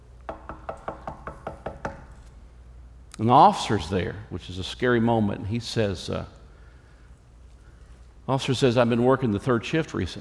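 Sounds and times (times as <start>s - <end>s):
knocking on a door: 0.3s - 2.0s
speech: 3.2s - 6.4s, 8.3s - 10.2s.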